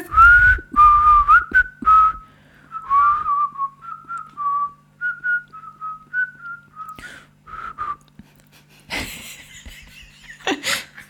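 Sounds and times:
person whistling a halting wavering tune: 0.0s - 8.1s
breathy laughter: 8.5s - 11.0s.

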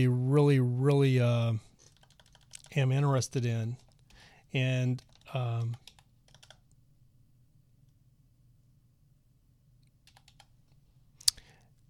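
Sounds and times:
speech: 0.0s - 1.7s, 2.7s - 3.8s, 4.5s - 5.8s
low steady hum: 0.0s - 11.8s
typing on a computer keyboard: 1.8s - 2.8s, 4.9s - 6.7s, 10.0s - 10.5s.

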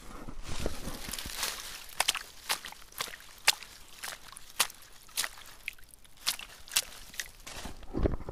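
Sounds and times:
shoes splashing through shallow lake water: 0.6s - 7.9s
water trickling: 1.0s - 7.5s.

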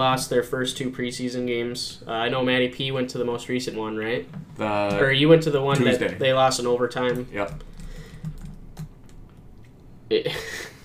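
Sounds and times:
speech: 0.0s - 7.7s, 10.1s - 10.6s
typing on a computer keyboard: 7.0s - 9.7s.

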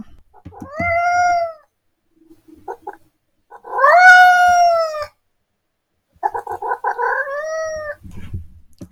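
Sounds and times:
long drawn-out cat meows: 0.5s - 1.7s, 2.7s - 5.2s, 6.2s - 8.0s.

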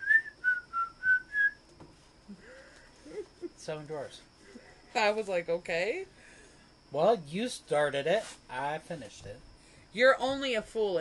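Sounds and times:
person whistling a short tune: 0.0s - 1.6s
speech: 3.7s - 4.3s, 4.9s - 6.2s, 6.9s - 10.9s.

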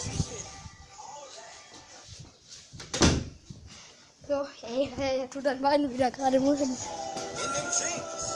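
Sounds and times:
door swinging shut with a solid thud: 2.8s - 3.4s
speech: 4.3s - 7.1s.

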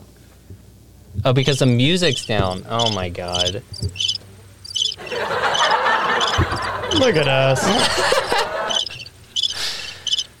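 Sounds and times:
speech: 1.2s - 4.2s, 6.9s - 8.2s
crickets chirping: 1.4s - 10.3s
laughter: 5.0s - 10.0s.

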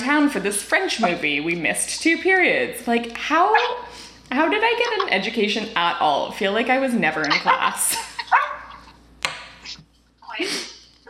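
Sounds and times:
speech: 0.1s - 8.4s
dog barking: 7.3s - 8.9s.

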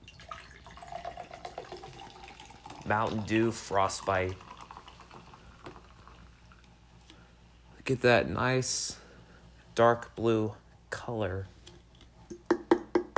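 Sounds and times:
cold fizzy soda pouring into a cup: 0.0s - 6.8s
speech: 2.9s - 4.5s, 7.9s - 9.0s, 9.8s - 11.6s.

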